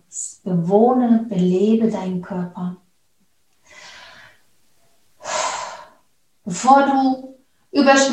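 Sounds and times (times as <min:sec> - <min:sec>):
speech: 0:00.1 - 0:02.8, 0:06.5 - 0:08.1
deep breath in: 0:03.6 - 0:04.5, 0:05.2 - 0:06.0.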